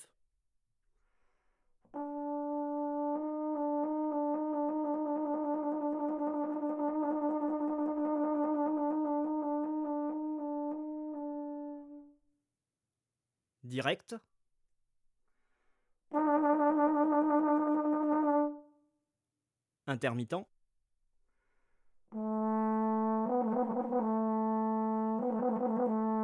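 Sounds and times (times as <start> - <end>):
tenor trombone valve trill: 1.9 - 12.1, 16.1 - 18.6, 22.1 - 26.2.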